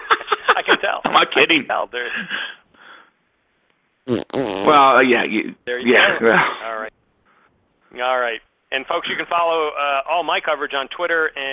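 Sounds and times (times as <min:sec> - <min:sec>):
speech: 0:00.5 - 0:02.6, 0:04.1 - 0:06.9, 0:07.9 - 0:11.5
comedic fart sound effect: 0:04.1 - 0:04.9.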